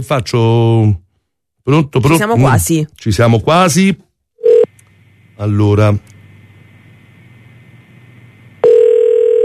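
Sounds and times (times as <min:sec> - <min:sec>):
speech: 0:00.0 - 0:01.0, 0:01.6 - 0:04.0, 0:05.4 - 0:06.1
international telephone ringing tone on a call to a town hall: 0:04.4 - 0:04.7, 0:08.6 - 0:09.4.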